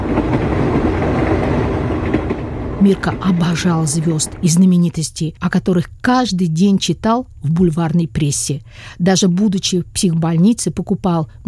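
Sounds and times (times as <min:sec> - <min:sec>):
express train slowing as it approaches a station: 0:00.0 - 0:05.2
speech: 0:02.8 - 0:11.4.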